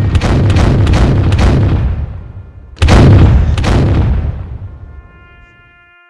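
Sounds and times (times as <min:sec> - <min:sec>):
cannon fire in a jingle: 0:00.0 - 0:04.9
heavy blasts: 0:00.0 - 0:05.1.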